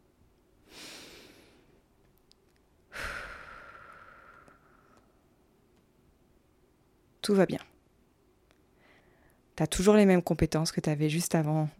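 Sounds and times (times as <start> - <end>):
deep breath with sighing exhale: 2.9 - 5.2, 8.8 - 9.5
speech: 7.2 - 7.6, 9.6 - 11.7.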